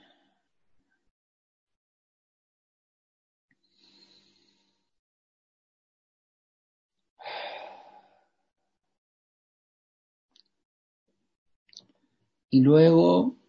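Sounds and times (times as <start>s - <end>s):
slow deep breathing in through nose and out through mouth: 3.7s - 4.9s, 7.2s - 8.4s
speech: 12.5s - 13.4s.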